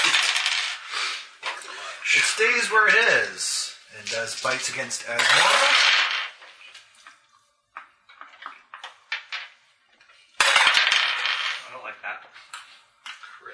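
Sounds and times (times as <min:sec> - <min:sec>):
dice clattering and rattling across a table: 0:00.0 - 0:00.8, 0:04.0 - 0:07.2, 0:07.8 - 0:11.7
speech: 0:02.1 - 0:06.1.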